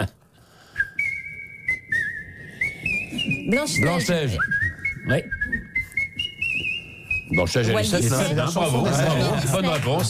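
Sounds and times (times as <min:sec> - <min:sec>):
person whistling a film melody: 0:00.6 - 0:07.5
speech: 0:03.5 - 0:05.4, 0:07.3 - 0:10.0.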